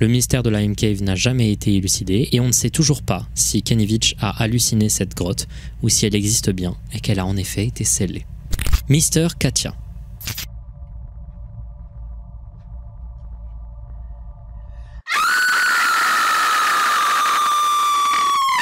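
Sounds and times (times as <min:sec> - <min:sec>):
speech: 0:00.0 - 0:08.3, 0:08.9 - 0:10.5
low steady rumble: 0:00.0 - 0:15.1
woman aged between 50 and 60 screaming: 0:15.1 - 0:18.5.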